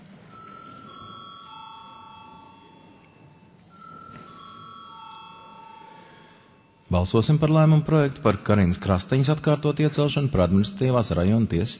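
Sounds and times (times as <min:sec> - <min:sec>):
parliament bell rung before a vote: 0:00.3 - 0:06.9
speech: 0:06.9 - 0:11.7.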